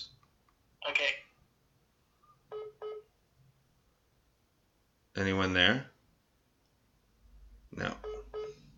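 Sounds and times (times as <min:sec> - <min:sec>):
electronic telephone tones: 0:02.2 - 0:03.1, 0:08.0 - 0:08.6
speech: 0:05.2 - 0:05.9, 0:07.8 - 0:08.1.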